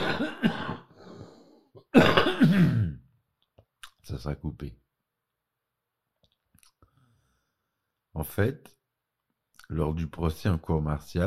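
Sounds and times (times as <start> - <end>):
person coughing: 0.0 - 1.1, 1.8 - 3.1
faint breathing: 0.9 - 1.8, 6.8 - 7.8
speech: 4.2 - 4.9, 8.2 - 8.8, 9.7 - 11.2.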